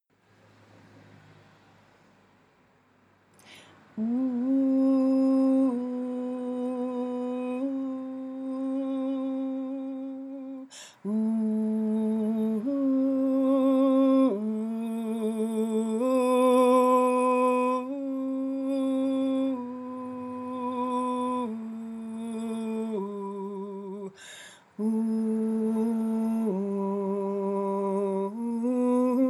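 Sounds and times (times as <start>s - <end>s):
person singing ooh in a low voice: 3.4s - 29.2s.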